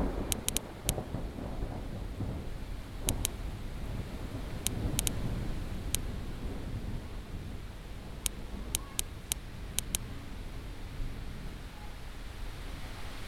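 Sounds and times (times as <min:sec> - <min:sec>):
sharp crackles and clicks: 0:00.0 - 0:01.1, 0:03.0 - 0:03.4, 0:04.5 - 0:05.2, 0:08.2 - 0:10.1
low rolling rumble of thunder: 0:00.0 - 0:11.8
rain-like noise: 0:00.0 - 0:13.2.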